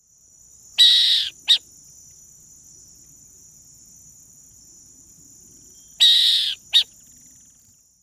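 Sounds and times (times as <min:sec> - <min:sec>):
burrowing owl: 0:00.8 - 0:01.6, 0:06.0 - 0:07.0.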